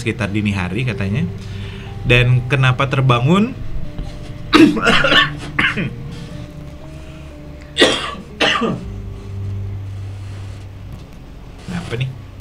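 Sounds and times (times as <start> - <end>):
speech: 0.0 - 3.6, 4.6 - 6.0, 8.6 - 8.8, 11.8 - 12.2
person clearing throat in the early hours of the night: 4.5 - 6.0, 7.8 - 8.9.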